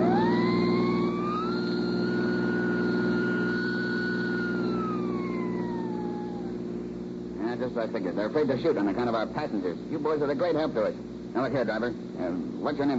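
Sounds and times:
vehicle siren wailing during chase: 0.0s - 6.8s
speech: 7.6s - 12.9s.

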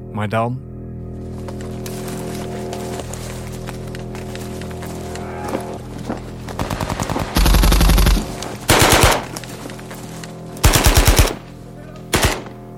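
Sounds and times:
speech: 0.2s - 0.7s
automatic gunfire: 6.6s - 9.4s, 10.6s - 11.5s, 12.1s - 12.6s.

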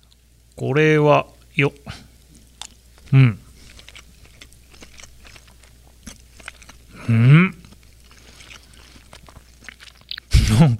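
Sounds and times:
person chewing a fish dish seasoned with salt and pepper: 0.0s - 0.6s, 1.2s - 10.4s
speech: 0.6s - 2.1s, 3.1s - 3.4s, 7.1s - 7.6s
quiet crunches: 2.3s - 10.7s.

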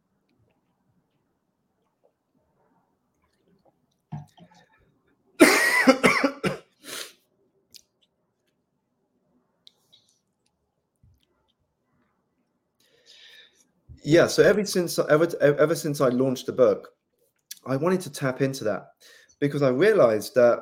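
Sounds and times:
person coughing: 5.4s - 6.8s
speech: 14.1s - 17.0s, 17.6s - 20.6s.

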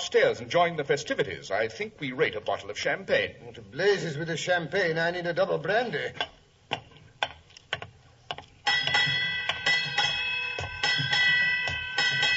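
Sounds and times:
speech: 0.1s - 6.4s
sharp ticking knocks: 6.2s - 12.3s
ship's bell striking eight bells: 8.7s - 12.3s.

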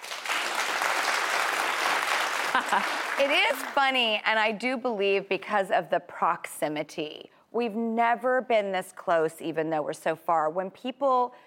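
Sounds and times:
audience clapping: 0.0s - 4.1s
speech: 2.6s - 11.4s.

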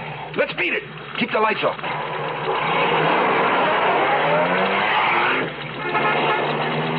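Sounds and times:
speech: 0.4s - 3.0s
car engine roaring pulling off the highway: 1.8s - 6.9s
car tires skidding: 1.8s - 6.9s.

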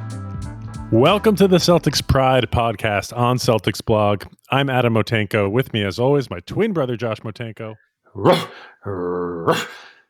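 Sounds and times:
speech: 0.9s - 9.9s
dog growling and barking: 8.2s - 9.8s.

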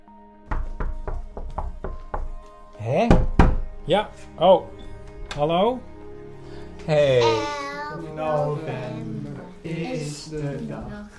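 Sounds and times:
small boy and his teenage brothers knocking on a door: 0.5s - 2.4s, 3.1s - 3.8s
speech: 2.8s - 3.3s, 3.9s - 4.8s, 5.4s - 5.9s, 6.9s - 9.1s, 9.7s - 11.1s.

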